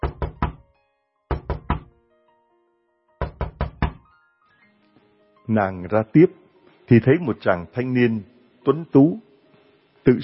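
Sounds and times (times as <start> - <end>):
firm knocking on a door: 0.0 - 0.6, 1.3 - 1.9, 3.2 - 4.0
speech: 5.5 - 9.3, 10.0 - 10.2.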